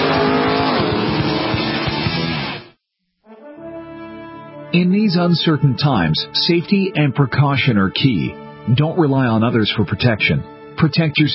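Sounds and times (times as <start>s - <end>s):
sports race car engines roaring: 0.0s - 2.6s
speech: 4.7s - 11.3s.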